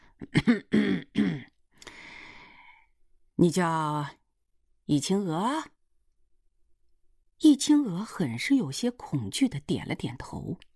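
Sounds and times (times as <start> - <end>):
person clearing throat in an office: 0.2 - 1.6
person coughing in an office: 0.2 - 1.6
speech: 0.4 - 1.0, 3.4 - 4.2, 4.9 - 5.7, 7.4 - 10.7.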